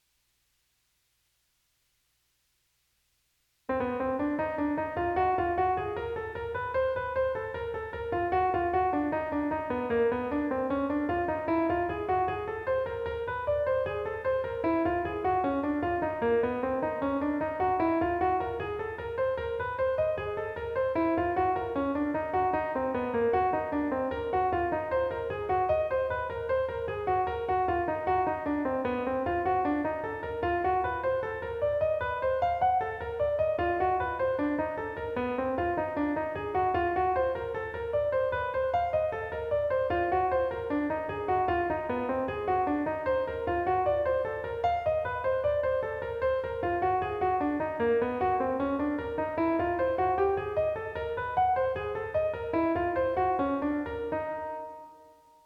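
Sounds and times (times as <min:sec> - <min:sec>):
jazz piano half diminished chord embellishment: 0:03.7 - 0:55.4.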